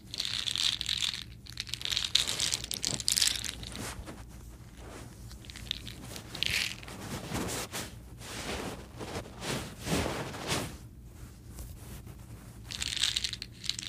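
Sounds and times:
soda candies crunching: 0.0 - 4.0, 4.6 - 6.9, 12.7 - 13.8
soda candy wrappers crinkling and rustling: 0.0 - 7.2, 12.6 - 13.8
faint low hum: 0.0 - 13.8.

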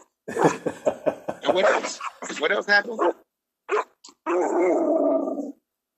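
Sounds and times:
speech: 0.3 - 0.9, 1.6 - 3.3, 4.3 - 5.5
laughter: 0.3 - 2.2
dog barking: 1.6 - 4.8.

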